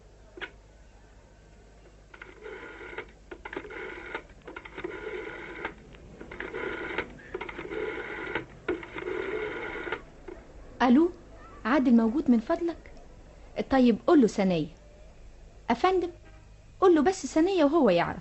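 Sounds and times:
old corded telephone handset being dialed: 2.1 - 10.4
speech: 10.8 - 11.2, 11.8 - 12.9, 13.6 - 14.8, 15.7 - 16.2, 16.8 - 18.1.

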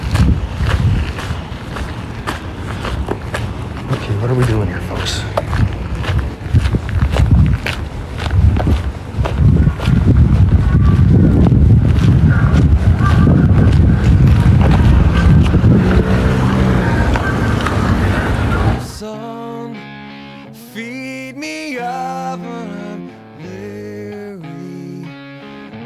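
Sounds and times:
light breeze buffeting the microphone on a cold day: 0.0 - 18.9
speech: 4.2 - 5.4.

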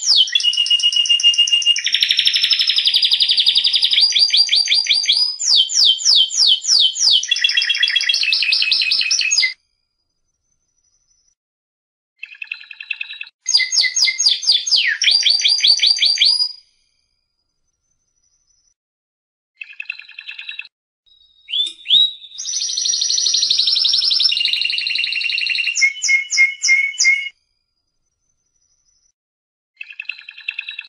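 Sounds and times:
competition first-place winner canary singing trills: 0.0 - 9.6, 12.2 - 16.6, 19.6 - 27.3.

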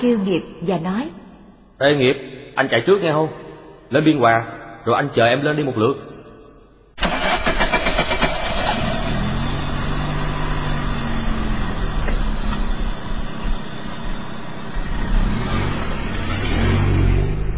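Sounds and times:
speech: 0.0 - 1.2, 1.8 - 6.1
Renault Sport car engine starting and revving: 7.0 - 17.5.

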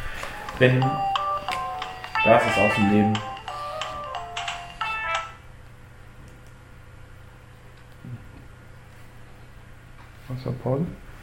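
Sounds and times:
telephone ringing with electronic ringtone: 0.3 - 5.4
speech: 0.6 - 1.1, 2.2 - 3.3, 10.4 - 11.1.

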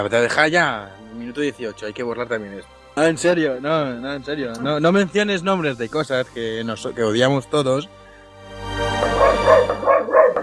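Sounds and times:
speech: 0.0 - 8.0
female dog whining and yipping barks: 9.2 - 10.4.

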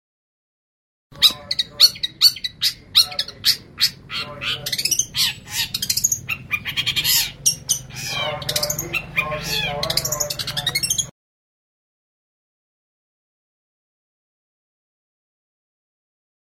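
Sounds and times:
long-tailed shrike giving harsh grating squawks: 1.2 - 11.1.

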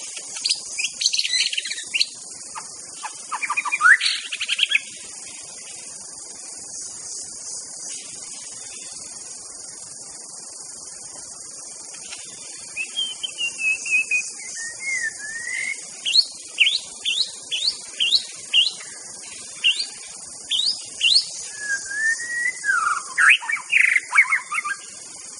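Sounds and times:
steady high insect hiss: 0.0 - 25.3
White-rumped shama whistled song: 0.4 - 2.2, 3.3 - 4.9, 12.7 - 24.9.

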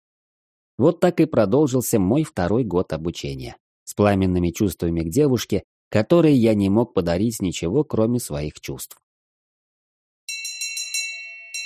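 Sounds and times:
speech: 0.8 - 9.0
bell at the head of a bed ringing: 10.3 - 11.6.

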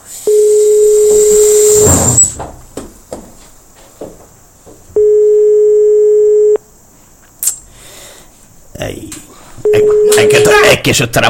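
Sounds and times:
telephone line tone on an unanswered call to a museum: 0.3 - 2.0, 5.0 - 6.6, 9.6 - 10.6
speech: 10.8 - 11.2.

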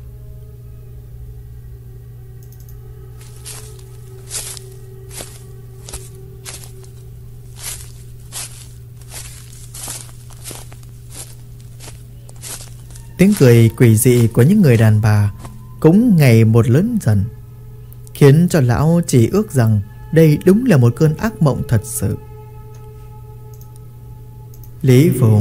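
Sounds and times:
steady low hum: 0.0 - 25.3
many people's footsteps crunching and rustling on dry leaves: 3.2 - 15.6
speech: 13.2 - 17.4, 18.2 - 22.3, 24.8 - 25.3.

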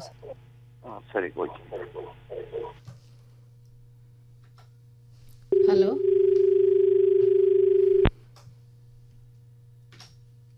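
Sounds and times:
speech: 0.0 - 2.9, 5.6 - 6.6
telephone dial tone after a dropped call: 5.6 - 8.1.

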